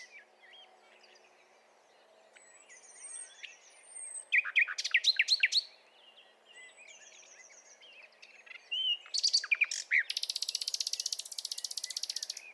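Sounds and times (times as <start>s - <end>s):
Common nightingale Luscinia megarhynchos singing looping notes: 0.0s - 1.4s, 2.0s - 12.5s
quiet background birdsong: 0.0s - 12.5s.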